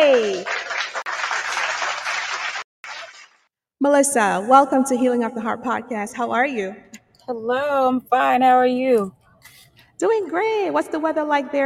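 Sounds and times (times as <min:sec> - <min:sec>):
crowd applause: 0:00.0 - 0:03.4
speech: 0:03.8 - 0:09.2, 0:10.0 - 0:11.6.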